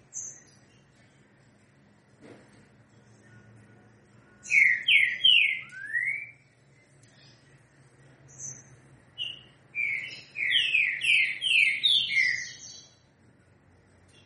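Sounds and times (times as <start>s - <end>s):
green-winged saltator singing três notas com boi song: 4.4s - 6.5s, 9.2s - 12.8s.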